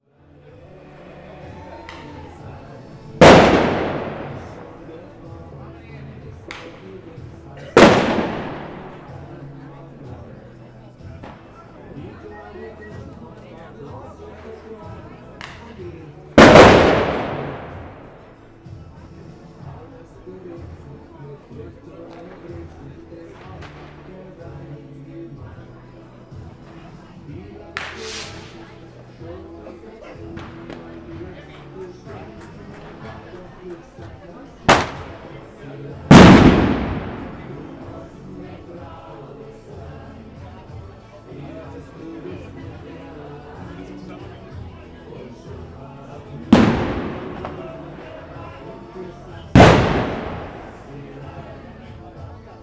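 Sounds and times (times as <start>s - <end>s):
firecrackers banging: 3.2s - 5.0s, 7.8s - 9.3s, 16.4s - 18.4s, 27.8s - 28.7s, 34.7s - 35.4s, 36.1s - 38.1s, 46.5s - 48.3s, 49.5s - 51.1s.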